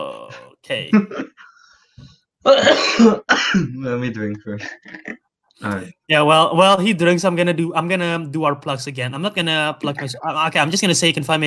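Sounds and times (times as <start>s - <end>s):
speech: 0.3s - 1.4s, 2.0s - 11.4s
person coughing: 2.5s - 3.8s.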